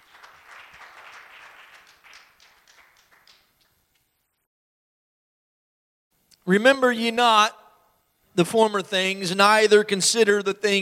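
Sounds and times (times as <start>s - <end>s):
audience clapping after a prayer: 0.0s - 4.1s
speech: 6.5s - 7.6s, 8.4s - 10.8s.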